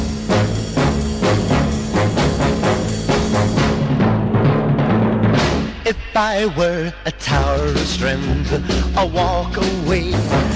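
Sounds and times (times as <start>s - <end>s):
early rock and roll single with full band: 0.0s - 10.5s
speech: 5.9s - 10.5s.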